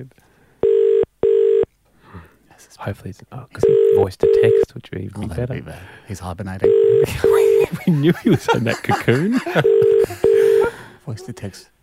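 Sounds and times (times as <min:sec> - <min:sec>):
speech: 0:00.0 - 0:00.3, 0:02.6 - 0:10.3, 0:11.1 - 0:11.8
phone call ringing tone over a line: 0:00.6 - 0:01.7, 0:03.6 - 0:04.6, 0:06.6 - 0:07.6, 0:09.6 - 0:10.7
laughter: 0:07.0 - 0:11.0.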